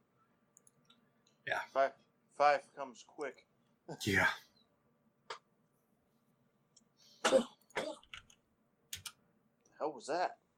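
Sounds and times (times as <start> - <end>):
speech: 1.5 - 4.5, 9.9 - 10.4
person coughing: 7.2 - 8.1.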